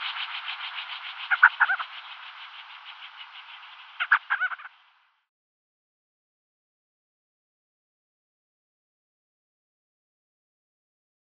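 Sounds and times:
crowned sandgrouse gurgling call: 0:00.0 - 0:04.8.

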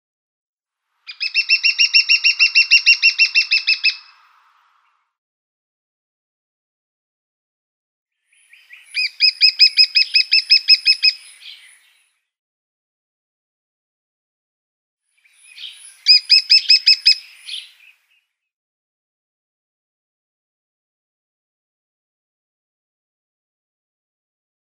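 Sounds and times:
lesser spotted woodpecker display: 0:01.1 - 0:05.0, 0:08.4 - 0:12.0, 0:15.3 - 0:18.0.

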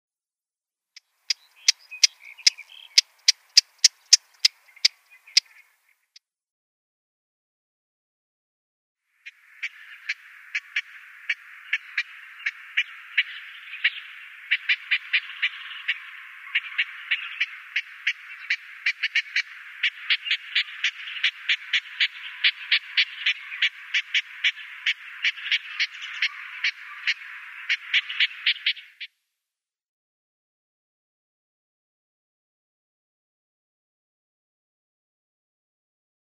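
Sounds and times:
Eastern Olivaceous Warbler calls: 0:01.3 - 0:06.2, 0:09.2 - 0:29.1.

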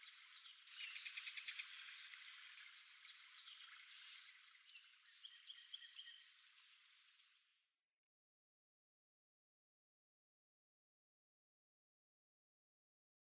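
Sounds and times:
African blue tit ultramarinus singing: 0:00.0 - 0:07.0.

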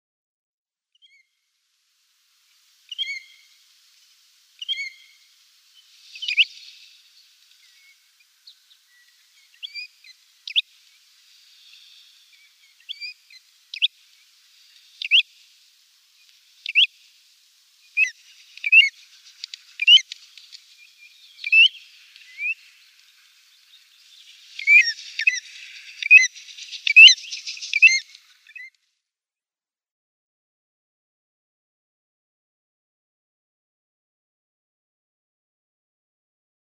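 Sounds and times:
Pacific Golden-Plover calls: 0:04.6 - 0:28.7.

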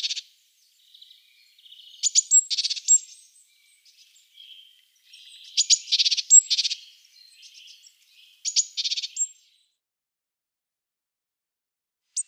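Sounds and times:
great tit calling: 0:00.0 - 0:09.5.

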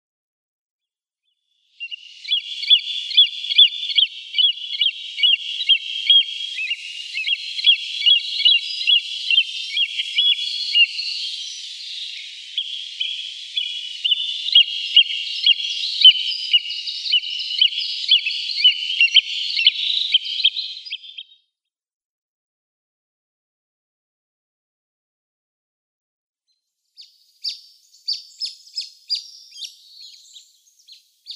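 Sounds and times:
Great Crested Grebe downy young: 0:01.8 - 0:21.2, 0:27.4 - 0:31.3.

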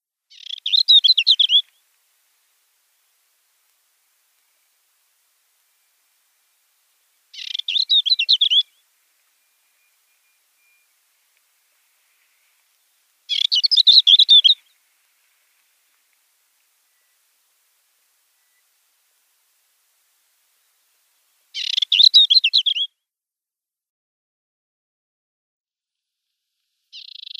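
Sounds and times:
African Desert Warbler singing: 0:00.3 - 0:01.7, 0:07.3 - 0:11.0, 0:11.8 - 0:14.8, 0:21.6 - 0:22.9, 0:27.0 - 0:27.3.

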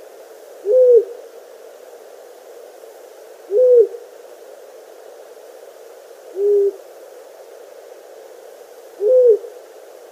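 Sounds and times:
faint hiss: 0:00.0 - 0:10.0
male long-eared owl giving low muffled display hoots: 0:00.6 - 0:01.2, 0:03.5 - 0:04.1, 0:06.3 - 0:06.8, 0:09.0 - 0:09.6.

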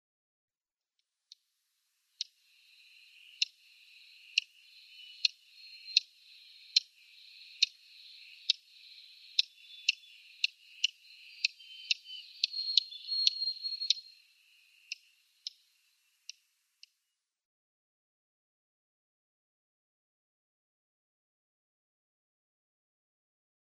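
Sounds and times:
Dark-eyed Junco calling: 0:02.1 - 0:16.4.

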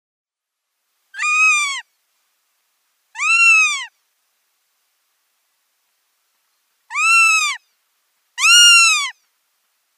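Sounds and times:
Northern goshawk wailing calls: 0:01.2 - 0:01.9, 0:03.2 - 0:03.9, 0:06.9 - 0:07.6, 0:08.4 - 0:09.2.

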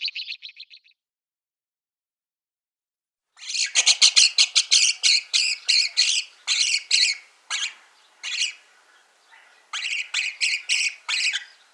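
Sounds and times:
Rosy starling harsh grating calls: 0:03.4 - 0:11.7.

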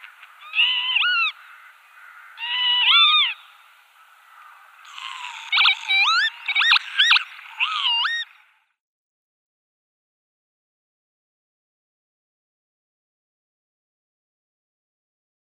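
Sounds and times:
male Northern lapwing display calls: 0:00.2 - 0:03.6, 0:04.3 - 0:08.5.

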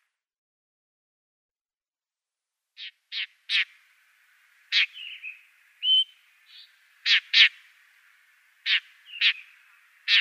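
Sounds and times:
blackstart soft whistled notes: 0:04.7 - 0:07.8, 0:08.6 - 0:10.1.

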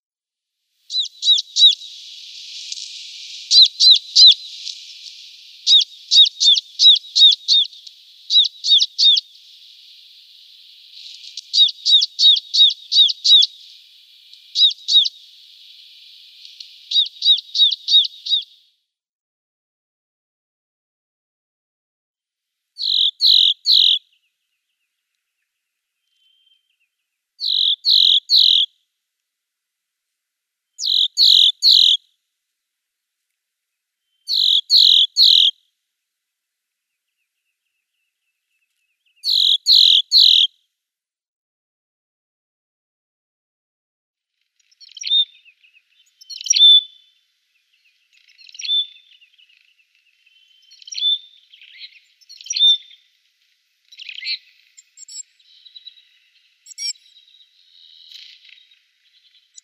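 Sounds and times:
Siberian tit song: 0:00.9 - 0:18.8, 0:22.8 - 0:28.7, 0:30.6 - 0:32.0, 0:33.6 - 0:40.5, 0:44.4 - 0:59.6.

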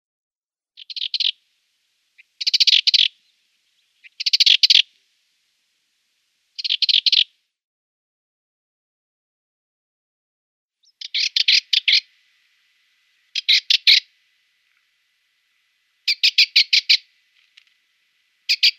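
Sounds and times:
Sardinian Warbler calling: 0:00.8 - 0:01.4, 0:02.0 - 0:05.0, 0:06.2 - 0:07.3, 0:10.8 - 0:18.7.

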